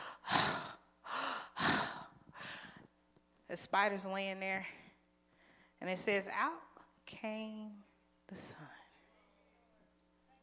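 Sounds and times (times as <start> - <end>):
heavy gasping breaths: 0.0 - 2.9
speech: 3.5 - 4.8, 5.8 - 8.8.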